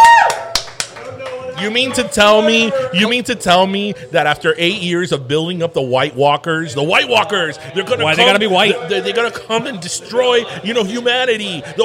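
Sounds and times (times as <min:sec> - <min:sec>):
scattered claps from a small bar crowd: 0:00.0 - 0:01.7
faint voices murmuring: 0:00.9 - 0:11.8
speech: 0:01.6 - 0:11.8.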